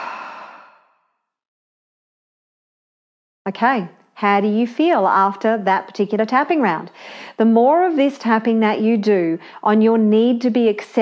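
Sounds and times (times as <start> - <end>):
soft airy exhale of a deep breath during a tapping relaxation exercise: 0.0 - 1.0
speech: 3.5 - 11.0.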